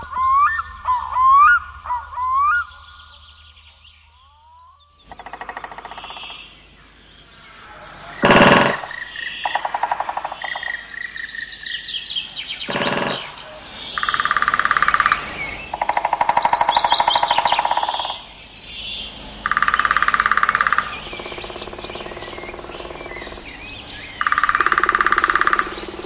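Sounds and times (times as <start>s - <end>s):
birds twittering: 0.0s - 26.0s
native Finnish woodpecker species drumming on dry branches: 5.0s - 26.0s
sharp knocks: 8.2s - 8.9s, 12.7s - 13.4s.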